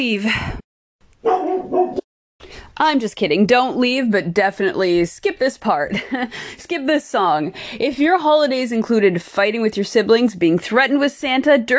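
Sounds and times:
speech: 0.0 - 0.6, 2.8 - 11.7
dog barking: 1.2 - 2.0.

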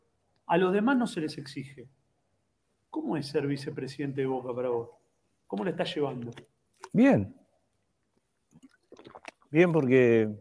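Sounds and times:
speech: 0.5 - 2.0, 3.0 - 7.4, 9.5 - 10.3
person sipping and gulping water: 7.7 - 9.9.

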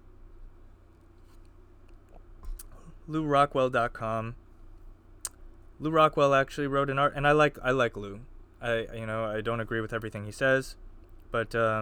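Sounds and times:
small wet mouth clicks: 2.1 - 2.8
speech: 3.1 - 4.4, 5.8 - 11.7.

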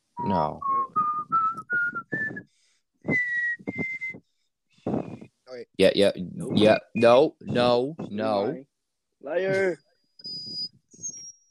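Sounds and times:
person whistling a short tune: 0.2 - 4.2
speech: 0.3 - 0.7, 5.5 - 9.8.

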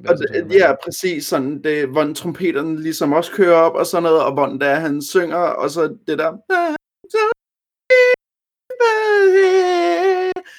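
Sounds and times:
speech: 0.0 - 7.3
high-pitched voice wailing through a filtered microphone: 6.6 - 10.4.

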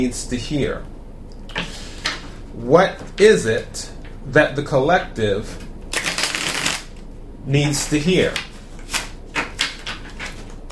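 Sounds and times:
speech: 0.0 - 1.0, 2.6 - 5.7, 7.4 - 8.5
stiff tough-stock tarot cards slapping and flicking while split: 6.0 - 6.9, 8.3 - 10.7.

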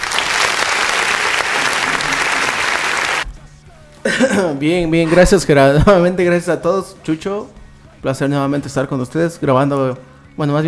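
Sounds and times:
loud dense applause: 0.0 - 3.2
laughter: 1.0 - 3.2
speech: 4.1 - 10.6.

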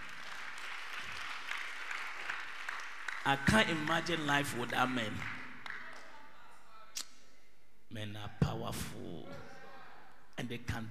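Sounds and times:
audience clapping: 0.0 - 6.3
speech: 3.2 - 5.4, 7.9 - 9.5, 10.4 - 10.8.

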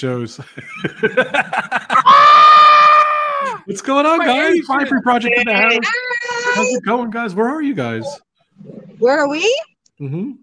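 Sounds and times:
speech: 0.0 - 2.2, 3.7 - 10.4
laughter: 0.4 - 3.7
25-year-old man screaming high-pitched: 2.0 - 3.6.

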